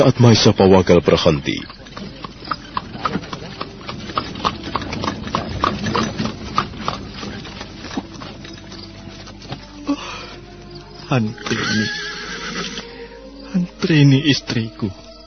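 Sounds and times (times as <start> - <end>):
speech: 0.0 - 1.8, 11.1 - 12.0, 13.5 - 15.0
horse-drawn carriage rolling over a rough stony road: 0.0 - 12.9
horse hoof clops: 0.8 - 12.9
wooden creaks of a carriage: 1.6 - 9.9.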